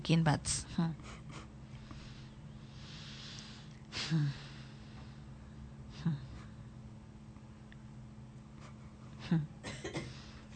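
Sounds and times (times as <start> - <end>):
speech: 0.0 - 1.4, 4.1 - 4.4, 6.0 - 6.2, 9.3 - 9.5
steady low room hum: 0.0 - 10.5
short coughs: 9.6 - 10.3.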